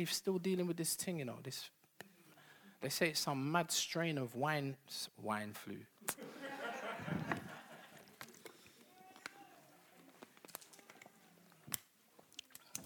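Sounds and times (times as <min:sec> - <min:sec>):
speech: 0:00.0 - 0:01.8, 0:02.8 - 0:06.4
laughter: 0:06.2 - 0:08.6
person sipping water: 0:08.0 - 0:08.9, 0:10.0 - 0:12.8
quiet swallows, lip smacks and small clicks: 0:11.5 - 0:12.8.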